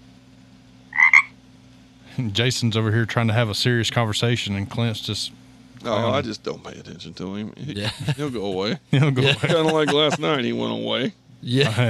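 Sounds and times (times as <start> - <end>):
low steady hum: 0.0 - 11.8
frog croaking: 0.9 - 1.4
speech: 2.2 - 11.8
laughter: 7.8 - 10.6, 11.5 - 11.8.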